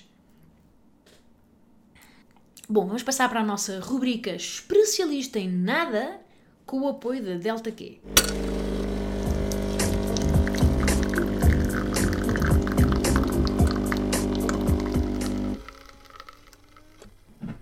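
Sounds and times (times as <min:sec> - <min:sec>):
speech: 0:02.7 - 0:08.4
low continuous hum: 0:08.1 - 0:16.2
coffee for drinking on the rocks pouring into a cup: 0:08.1 - 0:17.1.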